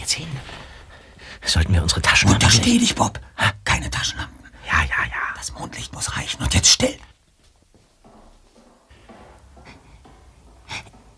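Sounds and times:
footsteps: 0:00.0 - 0:02.8, 0:06.8 - 0:11.1
speech: 0:01.5 - 0:07.1.

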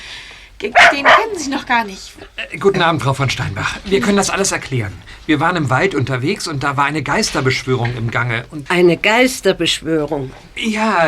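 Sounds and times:
speech: 0:00.6 - 0:11.0
dog barking: 0:00.7 - 0:01.5.

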